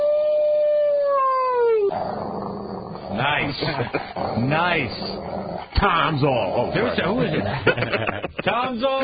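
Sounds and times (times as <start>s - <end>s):
dog howling: 0.0s - 3.3s
speech: 3.2s - 9.0s
laughter: 3.4s - 4.2s, 6.8s - 9.0s.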